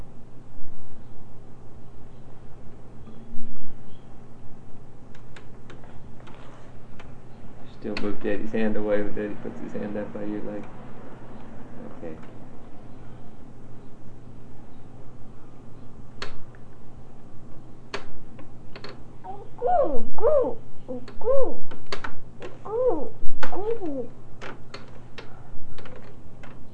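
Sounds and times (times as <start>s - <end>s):
speech: 7.8s - 10.8s, 12.0s - 12.3s
child imitating bird calls: 19.2s - 21.7s, 22.6s - 24.2s.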